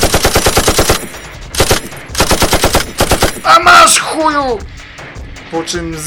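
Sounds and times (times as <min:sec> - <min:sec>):
rapid automatic gunfire: 0:00.0 - 0:03.5
speech: 0:03.5 - 0:04.8, 0:05.5 - 0:06.0.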